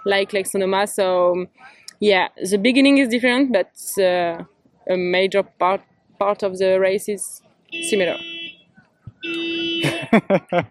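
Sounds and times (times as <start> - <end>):
speech: 0.0 - 8.3, 10.1 - 10.7
car alarm: 7.7 - 10.0
laughter: 9.8 - 10.7.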